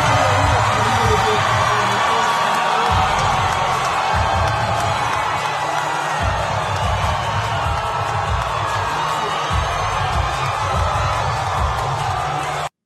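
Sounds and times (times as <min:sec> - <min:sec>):
large crowd cheering at a political rally in South Carolina: 0:00.0 - 0:12.8.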